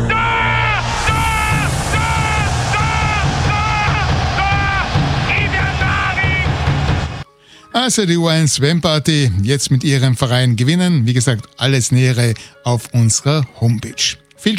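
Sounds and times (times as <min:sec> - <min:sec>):
large crowd yelling in a rhythmic chant: 0:00.1 - 0:07.3
speech: 0:07.8 - 0:14.5.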